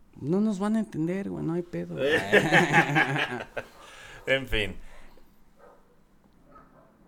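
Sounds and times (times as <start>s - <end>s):
speech: 0.2s - 4.9s
laughter: 1.9s - 4.8s
pack of dogs fighting and barking: 2.0s - 4.3s, 4.9s - 7.0s.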